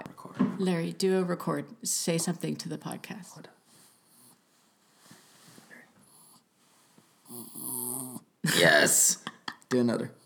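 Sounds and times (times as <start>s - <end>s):
speech: 0.6s - 3.6s, 8.4s - 10.2s
dog making snuffly vocal noises into the microphone: 7.3s - 8.3s.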